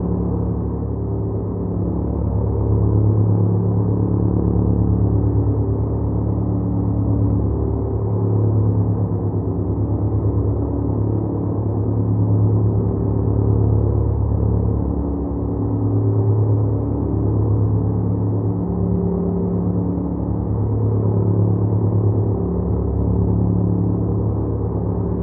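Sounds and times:
airdrop plane: 0.0s - 25.2s.

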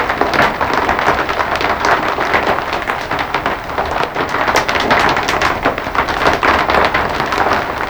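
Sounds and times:
rain on a roof: 0.0s - 7.8s.

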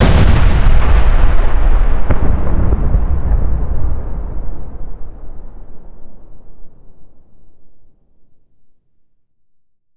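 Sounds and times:
large distant explosion: 0.0s - 7.9s.

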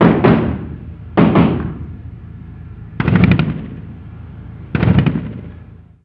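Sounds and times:
US assault rifle gunfire: 0.0s - 1.9s, 3.0s - 3.9s, 4.7s - 5.5s.

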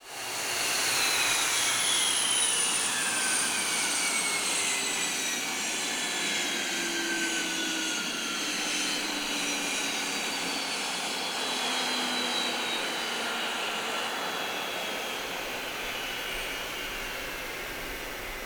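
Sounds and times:
F-5E aircraft J85GE engine shutdown: 0.3s - 18.4s.

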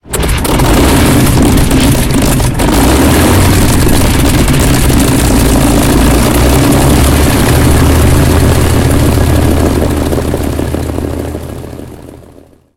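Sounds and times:
Griffon aircraft engine starting heard from cockpit: 0.0s - 12.6s.

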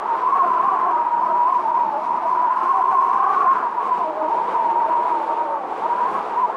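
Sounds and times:
mountain wind: 0.0s - 6.5s.

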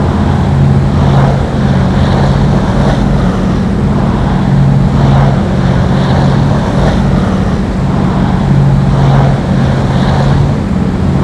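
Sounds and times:
cargo plane engine drone: 0.0s - 11.2s.

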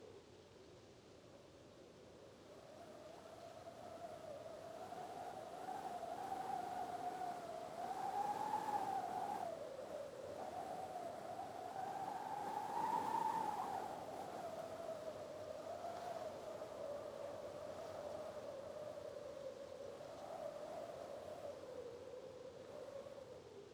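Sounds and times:
wind on an arctic beach: 2.6s - 23.7s.

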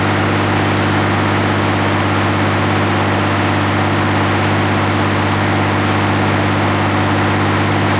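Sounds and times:
PT-76 tank engine at rpm 66 heard from interior: 0.0s - 7.9s.

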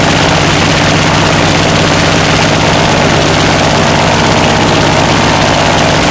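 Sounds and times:
engines: 0.0s - 6.1s.

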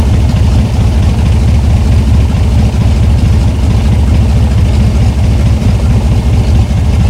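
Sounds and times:
engines on the Morava side: 0.0s - 7.0s.

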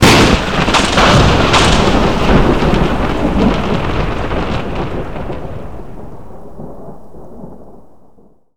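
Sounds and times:
thunder strike: 0.0s - 7.8s.

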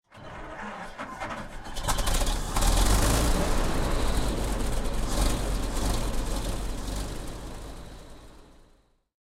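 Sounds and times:
M1 tank engine starting: 0.0s - 8.8s.

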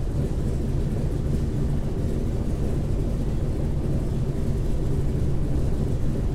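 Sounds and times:
engines heard in a C46 cockpit: 0.0s - 6.3s.

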